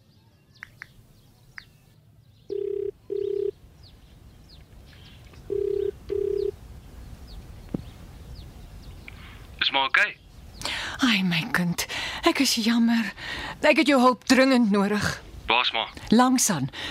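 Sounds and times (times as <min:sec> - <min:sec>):
faint birds chirping: 0:00.0 - 0:14.0
telephone ringing on the line as a call is placed: 0:02.5 - 0:03.5, 0:05.5 - 0:06.6
speech: 0:10.0 - 0:10.2, 0:11.1 - 0:16.8.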